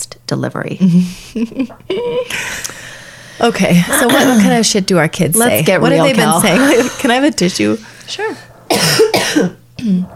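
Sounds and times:
speech: 0.3s - 2.5s, 3.4s - 10.1s
small coughs: 3.9s - 4.6s, 8.7s - 10.1s.

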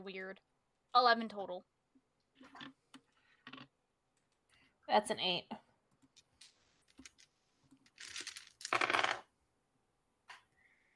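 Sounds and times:
speech: 0.0s - 1.7s, 4.9s - 5.6s
dice rolling on a hard table: 2.5s - 3.7s, 6.4s - 9.3s.

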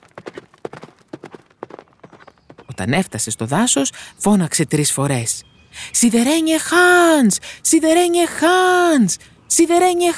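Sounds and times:
hooves of a lame stumbling ridden horse clip-clopping: 0.0s - 3.1s
speech: 2.8s - 10.1s.

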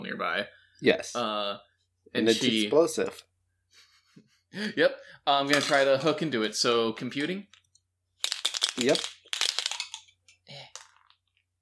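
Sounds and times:
speech: 0.1s - 3.3s, 4.5s - 7.6s, 8.8s - 9.2s
dice clattering across a hard surface: 5.5s - 5.9s, 7.5s - 11.4s.

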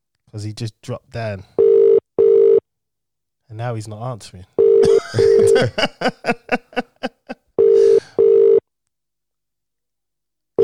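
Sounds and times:
speech: 0.3s - 1.6s, 3.5s - 6.9s
telephone line tone: 1.6s - 2.6s, 4.6s - 4.8s, 7.6s - 8.6s
two long even telephone ringing tones in a double pattern: 1.6s - 2.6s, 4.6s - 5.8s, 7.6s - 8.6s
laughter: 4.8s - 8.0s.

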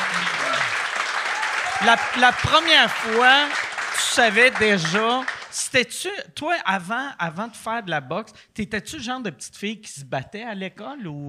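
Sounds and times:
crowd applause: 0.0s - 5.6s
speech: 1.8s - 11.2s.

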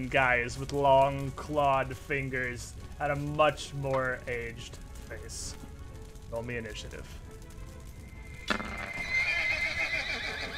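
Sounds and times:
speech: 0.0s - 5.6s, 6.3s - 7.2s
faint horse hoof clatter: 7.8s - 10.5s
horse neighing angrily: 8.3s - 10.5s.

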